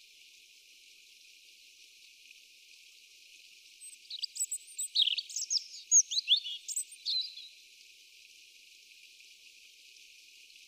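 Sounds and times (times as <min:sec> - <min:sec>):
European robin Erithacus rubecula singing: 0:03.8 - 0:07.5.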